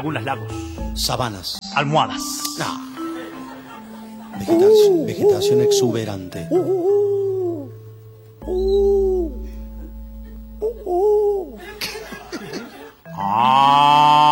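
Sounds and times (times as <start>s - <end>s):
speech: 0.0s - 2.9s, 4.4s - 7.2s, 8.4s - 8.9s
laughter: 2.9s - 6.0s, 9.3s - 13.2s
cow mooing: 13.1s - 14.3s.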